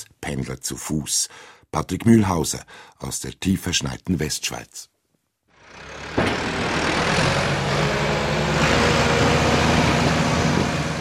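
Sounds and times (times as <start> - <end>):
speech: 0.0 - 5.0
heavy diesel tractor engine rumbling: 5.6 - 10.9.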